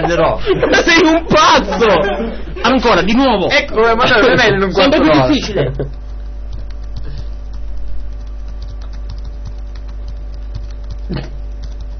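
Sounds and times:
laughter: 0:00.0 - 0:02.8, 0:05.1 - 0:06.0
speech: 0:00.0 - 0:06.0, 0:11.1 - 0:11.4
steady low electrical hum: 0:00.0 - 0:11.9
typing on a keyboard: 0:05.9 - 0:11.9.

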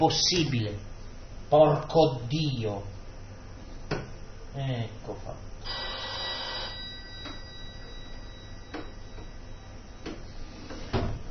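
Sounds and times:
speech: 0:00.0 - 0:00.9, 0:01.5 - 0:03.0, 0:04.6 - 0:05.9
telephone ringing: 0:05.7 - 0:10.0
faint tone: 0:05.7 - 0:10.9.

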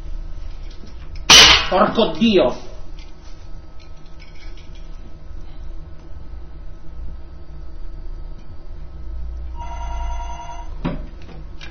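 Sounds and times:
steady low rumbling hum: 0:00.0 - 0:11.6
speech: 0:01.7 - 0:02.7
telephone bell ringing: 0:09.6 - 0:10.8.

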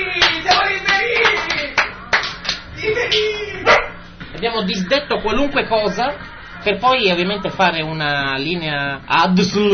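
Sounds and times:
small club audience clapping: 0:00.0 - 0:03.3
speech: 0:04.5 - 0:09.7.

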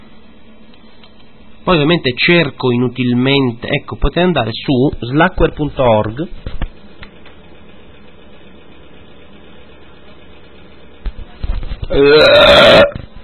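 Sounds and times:
quiet hum: 0:00.0 - 0:13.2
speech: 0:01.6 - 0:06.6, 0:11.9 - 0:12.9
loud drawn-out croaky burp: 0:11.9 - 0:13.0.

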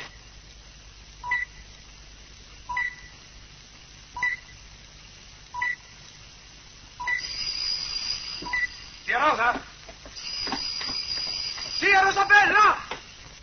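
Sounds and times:
quiet hiss: 0:00.0 - 0:13.4
telephone ringing with short electronic tone bursts: 0:07.0 - 0:13.1.

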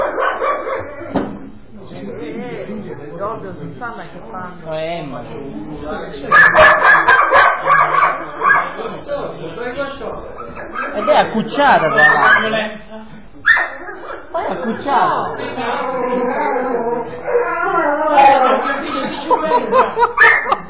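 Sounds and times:
dog barking and yipping: 0:00.0 - 0:01.1, 0:06.3 - 0:08.8, 0:10.4 - 0:11.3, 0:11.9 - 0:12.6, 0:13.4 - 0:14.3, 0:20.0 - 0:20.6
speech: 0:03.4 - 0:07.1, 0:10.9 - 0:12.8, 0:14.7 - 0:16.6, 0:19.2 - 0:20.6
laughter: 0:14.4 - 0:17.2, 0:18.2 - 0:20.6.

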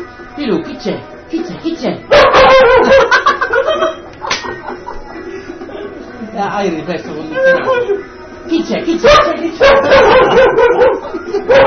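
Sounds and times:
speech: 0:00.4 - 0:04.0, 0:06.4 - 0:11.6
dog barking and yipping with whining tones: 0:02.1 - 0:03.3, 0:09.0 - 0:11.6
laughter: 0:02.6 - 0:06.2, 0:07.3 - 0:08.2, 0:09.2 - 0:11.6.

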